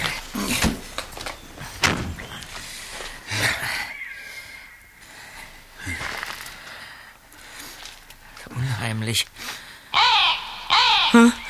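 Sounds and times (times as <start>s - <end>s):
bird giving harsh raspy cries and a lower squawk: 1.2s - 6.7s, 9.9s - 11.4s
speech: 9.1s - 9.4s.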